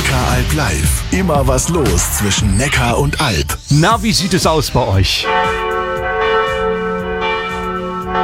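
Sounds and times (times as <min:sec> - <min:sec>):
speech: 0:00.2 - 0:05.6
wedding church bells ringing in a full continuous peal: 0:05.2 - 0:08.2.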